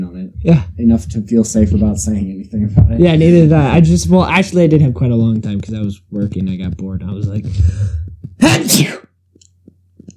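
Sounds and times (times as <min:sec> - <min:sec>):
speech: 0:00.4 - 0:09.0
person sneezing: 0:08.4 - 0:09.1.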